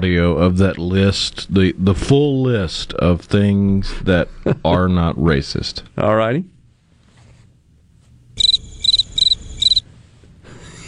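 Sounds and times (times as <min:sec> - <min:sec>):
speech: 0:00.0 - 0:06.5
faint low hum: 0:00.0 - 0:10.8
crickets chirping sound effect: 0:08.4 - 0:09.8.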